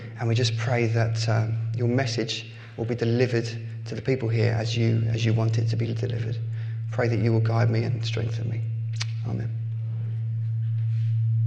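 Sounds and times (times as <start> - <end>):
steady low microphone feedback tone: 0.0 - 11.4
speech: 0.2 - 9.6.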